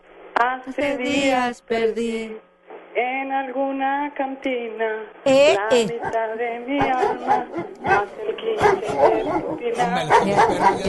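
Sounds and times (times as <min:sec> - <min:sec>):
speech: 0:00.4 - 0:10.8
several dogs barking: 0:06.8 - 0:10.8.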